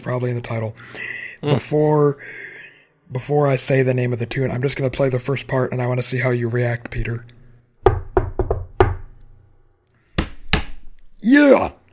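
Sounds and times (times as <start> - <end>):
speech: 0.0 - 2.5, 3.1 - 7.4, 11.2 - 11.8
knocking in a familiar rhythm: 7.8 - 9.2.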